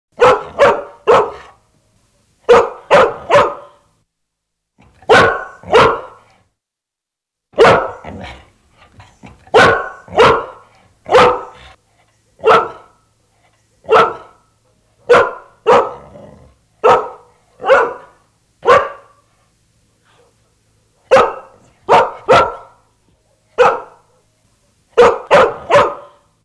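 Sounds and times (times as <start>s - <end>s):
dog: 0.2s - 1.6s, 2.5s - 3.8s, 4.9s - 6.4s, 7.6s - 11.8s, 15.1s - 16.0s, 16.8s - 19.2s, 21.1s - 22.8s, 23.6s - 24.0s, 25.0s - 26.2s.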